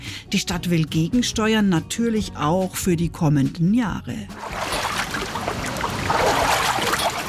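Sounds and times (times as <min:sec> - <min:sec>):
speech: 0:00.3 - 0:04.6
feet wading through water in a Kneipp pool: 0:04.4 - 0:07.2.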